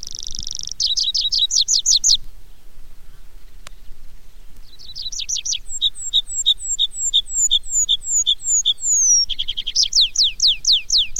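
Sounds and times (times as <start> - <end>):
tree pipit singing: 0.0 - 2.2, 4.6 - 11.1.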